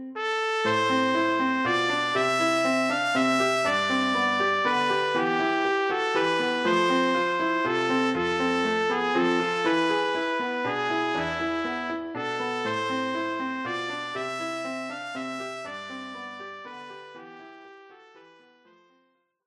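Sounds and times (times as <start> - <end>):
trumpet playing a folk tune: 0.2 - 18.9.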